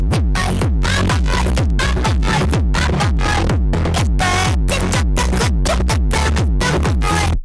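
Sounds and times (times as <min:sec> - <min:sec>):
bass boosted song: 0:00.0 - 0:07.4.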